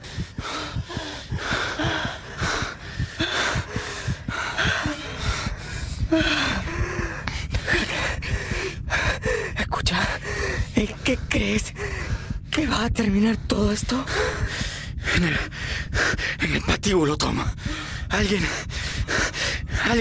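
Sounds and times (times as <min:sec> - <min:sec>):
people panting to catch their breath on the floor of an abandoned tannery shed: 0:00.0 - 0:12.4, 0:13.9 - 0:16.5, 0:17.5 - 0:19.9
speech: 0:12.9 - 0:14.6, 0:15.2 - 0:18.7.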